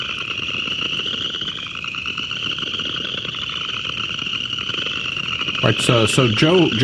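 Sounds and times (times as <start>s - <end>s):
large chorus of upland chorus frogs rasping trills: 0.0s - 6.8s
speech: 5.6s - 6.8s.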